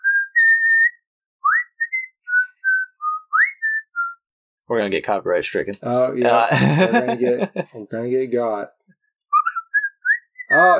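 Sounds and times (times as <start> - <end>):
person whistling a film intro tune: 0.0 - 4.2, 9.3 - 10.7
speech: 4.7 - 8.8, 10.6 - 10.7
laughter: 6.3 - 7.8.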